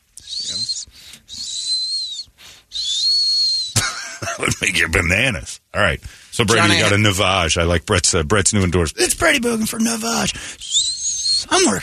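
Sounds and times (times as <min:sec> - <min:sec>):
voice imitating a squeaking microphone mount: 0:00.2 - 0:03.8, 0:06.5 - 0:06.9, 0:10.6 - 0:11.8
laughter: 0:03.8 - 0:04.9, 0:06.5 - 0:07.0
speech: 0:04.4 - 0:10.7, 0:11.6 - 0:11.8.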